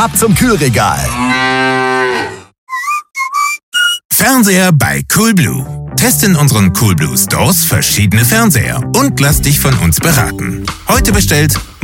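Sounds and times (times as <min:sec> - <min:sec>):
speech: 0:00.0 - 0:02.4, 0:04.2 - 0:11.8
cow moo from a promotional milk bottle: 0:01.0 - 0:03.5
high whistled tones: 0:02.7 - 0:04.1.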